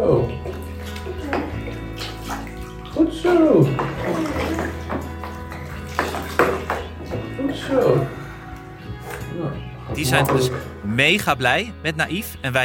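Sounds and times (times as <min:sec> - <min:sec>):
water from a small bucket pouring and splashing over a person: 0:00.3 - 0:08.1
speech: 0:10.1 - 0:12.6.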